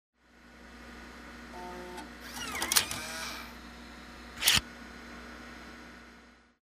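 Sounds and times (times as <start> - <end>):
computer disc ejecting: 1.6 - 3.5, 4.4 - 4.6.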